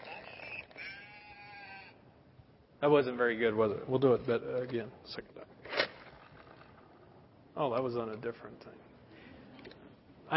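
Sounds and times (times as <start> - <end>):
toy playing a recorded sheep bleat: 0.0 - 2.0
speech: 2.8 - 5.6, 7.6 - 8.9.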